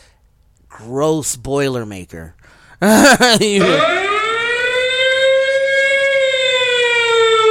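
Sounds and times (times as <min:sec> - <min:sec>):
speech: 0:00.8 - 0:04.1
laughter: 0:02.8 - 0:03.9
siren wailing: 0:03.6 - 0:07.4.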